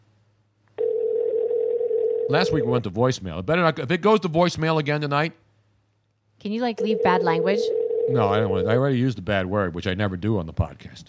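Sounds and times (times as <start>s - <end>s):
faint low hum: 0.0s - 11.0s
telephone dial tone of an outgoing call: 0.8s - 2.3s, 6.9s - 8.2s
speech: 2.3s - 5.4s, 6.4s - 11.0s.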